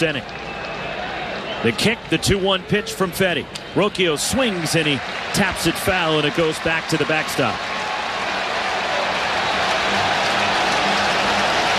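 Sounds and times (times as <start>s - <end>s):
speech: 0.0s - 0.4s, 1.6s - 7.8s
large baseball stadium crowd cheering and clapping: 0.0s - 11.7s.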